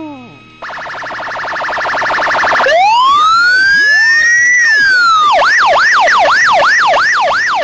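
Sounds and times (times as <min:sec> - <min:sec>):
police siren cycling through whoop, warble, wail and yelp modes: 0:00.6 - 0:07.6.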